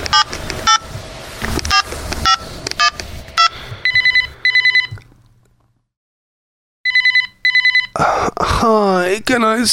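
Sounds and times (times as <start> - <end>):
clattering clicks and tones: 0.0 - 5.8
electronic telephone double ring sound effect: 1.7 - 5.0, 6.9 - 8.0
speech: 9.2 - 9.7.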